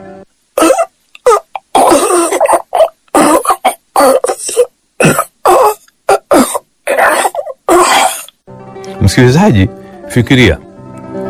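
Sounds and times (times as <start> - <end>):
person choking and coughing, losing breath: 0.6 - 8.4
speech: 9.2 - 10.6.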